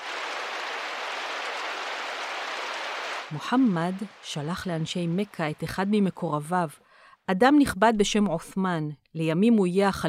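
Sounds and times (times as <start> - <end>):
heavy rain pouring: 0.0 - 5.9
speech: 3.3 - 10.0.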